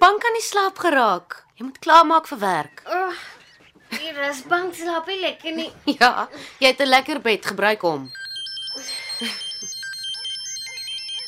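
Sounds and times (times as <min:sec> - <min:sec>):
speech: 0:00.4 - 0:03.4, 0:04.0 - 0:08.2, 0:08.8 - 0:09.5
electronic phone ringtone at home: 0:08.0 - 0:11.2
laughter: 0:08.8 - 0:11.2.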